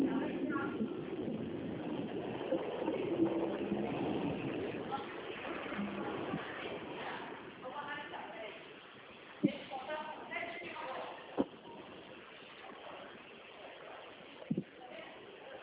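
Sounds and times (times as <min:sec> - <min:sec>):
car engine rumbling as the vehicle pulls off: 0:00.0 - 0:07.6
faint voices: 0:00.0 - 0:15.6.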